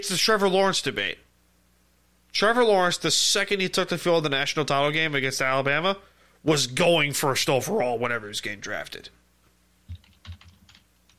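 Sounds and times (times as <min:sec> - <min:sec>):
speech: 0:00.0 - 0:01.2, 0:02.3 - 0:09.2
typing on a computer keyboard: 0:09.9 - 0:11.1.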